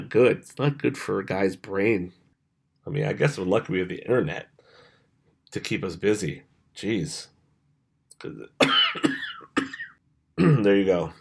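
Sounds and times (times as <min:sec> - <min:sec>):
speech: 0:00.1 - 0:02.2, 0:02.8 - 0:04.5, 0:05.5 - 0:07.3, 0:08.2 - 0:09.1, 0:10.4 - 0:11.1
sick person coughing: 0:08.6 - 0:10.8.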